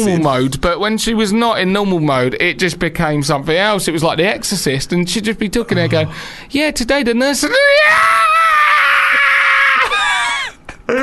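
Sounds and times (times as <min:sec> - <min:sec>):
speech: 0:00.0 - 0:08.4, 0:10.9 - 0:11.0
voice imitating a girl's wild screaming: 0:07.5 - 0:10.1.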